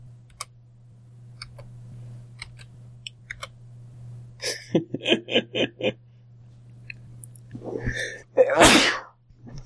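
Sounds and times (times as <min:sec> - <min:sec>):
steady low electrical hum: 0:00.0 - 0:09.6
laughter: 0:04.4 - 0:06.0
loud sneeze: 0:07.7 - 0:09.2.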